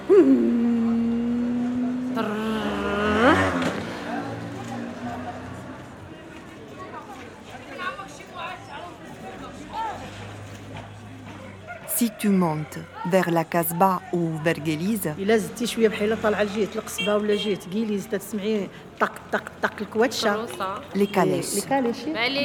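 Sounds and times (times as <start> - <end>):
voices and chatter in a busy medina street: 0.0 - 22.4
speech: 0.2 - 0.6, 12.2 - 22.4
small moped engine droning and revving past in an old medina: 0.4 - 5.8.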